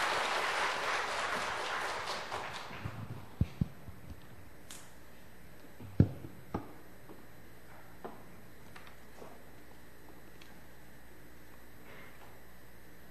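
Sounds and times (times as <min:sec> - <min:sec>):
audience applause: 0:00.0 - 0:03.3.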